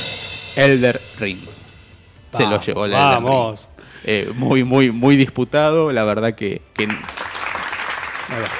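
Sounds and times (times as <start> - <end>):
speech: 0.6 - 1.6, 2.3 - 7.2, 8.3 - 8.5
crowd clapping in dense continuous applause: 6.8 - 8.5.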